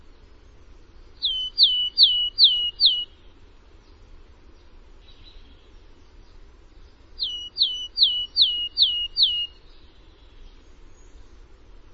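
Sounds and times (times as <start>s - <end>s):
faint low background hum: 0.0s - 11.9s
downward-slurred whistled bird calls: 1.2s - 3.2s, 7.2s - 9.6s.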